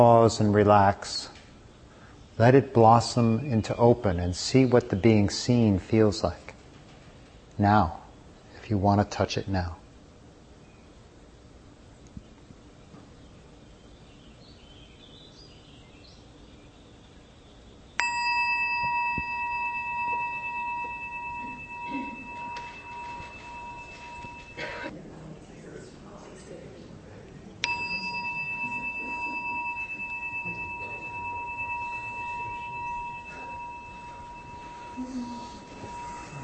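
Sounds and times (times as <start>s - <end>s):
speech: 0.0s - 1.3s, 2.4s - 6.4s, 7.6s - 8.0s, 8.7s - 9.8s
meditation bell ringing: 18.0s - 24.9s, 27.6s - 36.4s.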